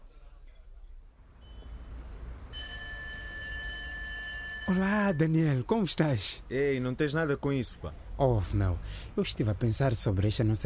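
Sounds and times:
telephone ringing with a bright electronic tone: 0:02.6 - 0:05.3
speech: 0:04.7 - 0:10.6.

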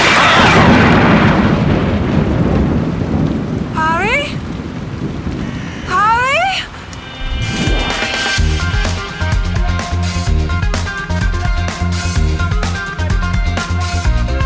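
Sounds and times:
heavy rumbling thunder crash from lightning strike: 0:00.0 - 0:03.8, 0:04.4 - 0:12.0
steady rain-like hiss: 0:01.4 - 0:14.4.

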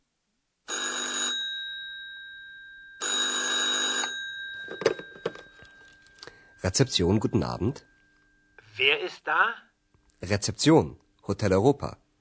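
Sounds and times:
telephone ringing in long trilling bursts: 0:00.7 - 0:07.8
speech: 0:06.6 - 0:07.9, 0:08.8 - 0:12.0.

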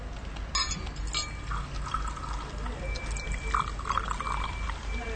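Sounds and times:
light glassy clinks: 0:00.5 - 0:05.1
water poured into a glass: 0:01.4 - 0:05.1.

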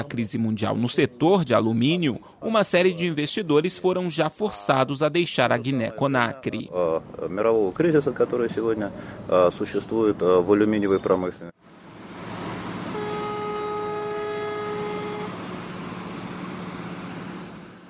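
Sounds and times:
speech: 0:00.0 - 0:11.7
freight train horn blast: 0:12.9 - 0:15.9.

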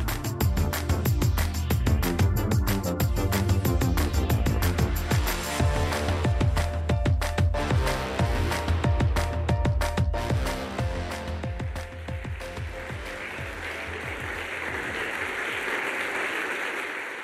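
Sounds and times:
short burst of music with sharp percussive hits: 0:00.0 - 0:14.4
dense applause from a large crowd at a ceremony: 0:11.8 - 0:17.2.

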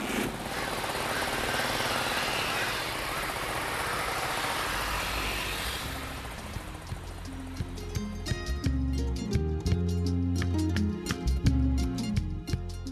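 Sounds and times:
motorcycle taxi engine running and pulling away: 0:00.0 - 0:09.0
rhythmic music with a steady beat: 0:06.9 - 0:12.9.

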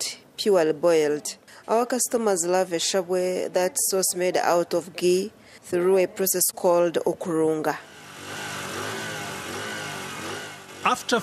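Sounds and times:
busy street traffic: 0:00.0 - 0:11.2
speech: 0:00.4 - 0:07.9, 0:10.8 - 0:11.2
motorcycle rumbling: 0:07.4 - 0:11.2.

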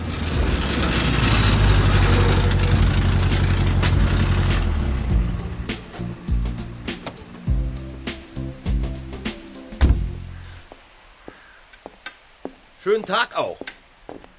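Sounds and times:
car engine running with a damaged rattling exhaust in a repair garage: 0:00.0 - 0:07.8
speech: 0:12.9 - 0:13.8.

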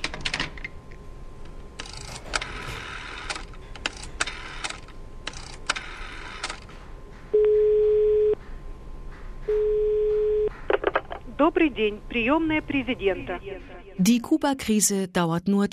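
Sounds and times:
rapid telephone dialing clicking bursts: 0:01.8 - 0:06.6
long steady electronic telephone line tones: 0:07.4 - 0:08.4, 0:09.5 - 0:10.5
speech: 0:11.5 - 0:15.7.

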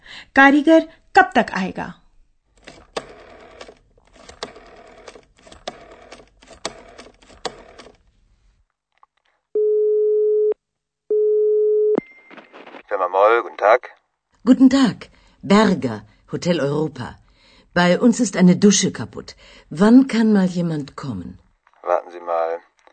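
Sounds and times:
speech: 0:00.4 - 0:02.0, 0:14.5 - 0:17.2, 0:17.8 - 0:22.7
rapid mechanical clicking: 0:02.6 - 0:08.0
telephone ringing tone with electronic beeps: 0:09.6 - 0:12.0.

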